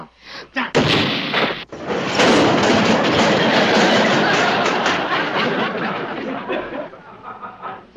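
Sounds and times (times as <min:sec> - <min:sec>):
bomb exploding against a safe: 0:00.7 - 0:05.3
laughter: 0:01.9 - 0:07.9.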